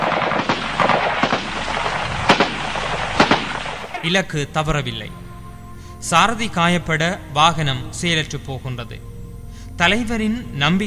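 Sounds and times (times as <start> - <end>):
rifle shots: 0.0 - 4.1
rough battle-like noise: 0.0 - 4.2
speech: 4.0 - 5.2, 6.0 - 9.1, 9.8 - 10.8.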